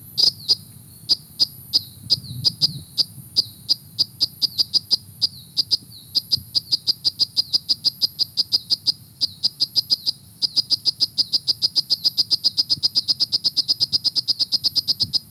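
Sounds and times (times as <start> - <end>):
Philautus lissobrachius frog calling in Mulu Kerangas: 0.2 - 15.2.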